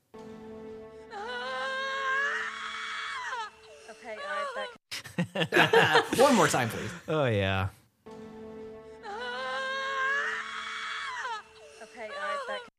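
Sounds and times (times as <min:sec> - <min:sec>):
woman screaming in labor: 0:01.2 - 0:04.8, 0:09.1 - 0:12.7
laughter: 0:04.9 - 0:07.0
speech: 0:05.2 - 0:07.8.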